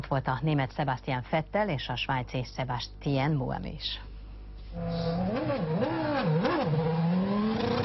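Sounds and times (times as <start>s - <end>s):
speech: 0.0s - 4.1s, 4.7s - 5.9s
road noise: 4.7s - 7.8s
race car engine roaring: 4.8s - 7.8s.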